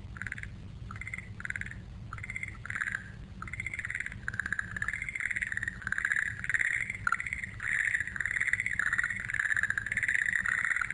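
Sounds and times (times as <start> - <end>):
frog calling in rapid pulsed trills: 0.0 - 10.9.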